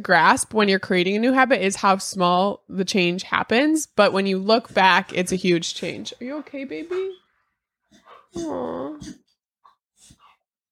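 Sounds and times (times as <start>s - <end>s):
speech: 0.0s - 7.2s, 8.3s - 9.2s
small female puppy gasping and choking from eating dirt: 7.9s - 9.3s.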